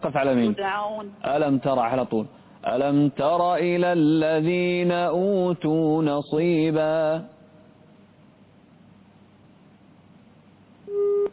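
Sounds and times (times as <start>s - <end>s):
speech: 0.0s - 7.4s
phone line hiss: 10.9s - 11.3s
telephone busy tone beep on a narrow-band phone line: 10.9s - 11.3s.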